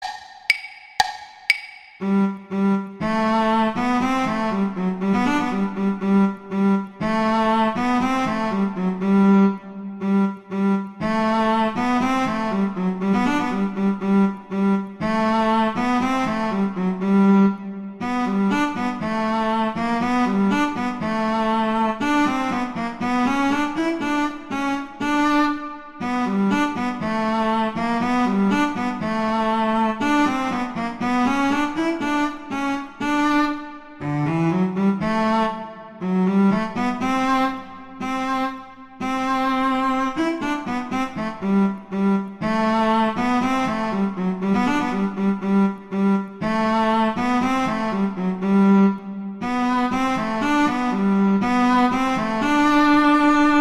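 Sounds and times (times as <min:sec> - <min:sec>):
cello duet accompaniment: 0:00.0 - 0:53.6.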